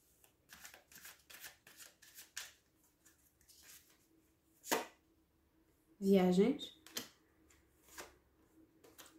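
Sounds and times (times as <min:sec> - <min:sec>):
tarot cards being shuffled: 0:00.2 - 0:04.0, 0:04.6 - 0:05.0, 0:06.9 - 0:08.2
sharp slap of tarot cards: 0:04.6 - 0:05.0
speech: 0:06.0 - 0:06.8.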